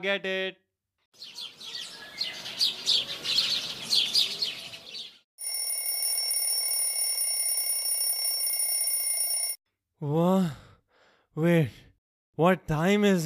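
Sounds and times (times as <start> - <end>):
speech: 0.0 - 1.6, 10.0 - 10.6, 11.4 - 11.8, 12.4 - 13.2
birds chirping: 1.2 - 5.2
alarm clock ringing with a steady electronic tone: 5.4 - 9.6.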